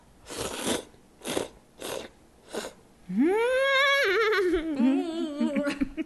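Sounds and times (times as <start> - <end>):
noodles slurped from a sweet-leaning salty soup: 0.2 - 2.8
person humming: 3.1 - 6.0.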